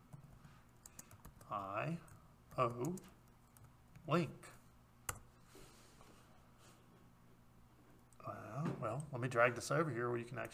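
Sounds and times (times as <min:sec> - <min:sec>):
fingers typing a web search on a computer keyboard: 0:00.1 - 0:04.1
speech: 0:01.5 - 0:03.2, 0:04.0 - 0:04.6, 0:08.8 - 0:10.5.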